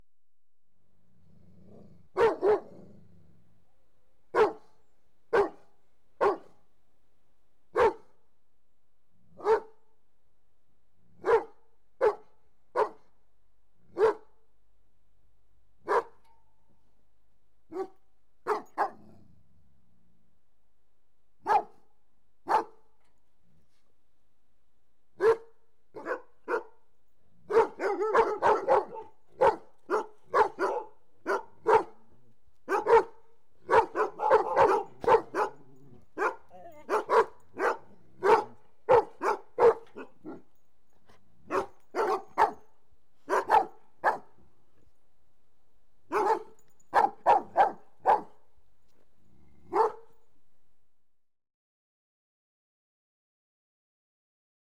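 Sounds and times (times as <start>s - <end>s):
Doberman barking: 2.2s - 2.9s, 4.3s - 6.6s, 7.8s - 8.1s, 9.4s - 9.8s, 11.2s - 13.1s, 13.9s - 14.4s, 15.8s - 16.3s, 17.7s - 19.2s, 21.4s - 21.8s, 22.5s - 22.8s, 25.2s - 26.8s, 27.5s - 32.1s, 32.7s - 40.6s, 41.5s - 44.4s, 46.1s - 48.4s, 49.6s - 50.2s.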